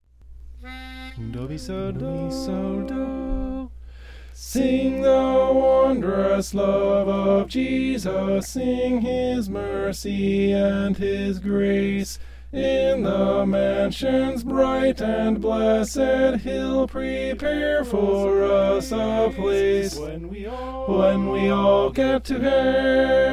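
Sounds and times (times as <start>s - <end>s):
tenor voice singing: 0.6s - 3.7s, 4.4s - 23.3s.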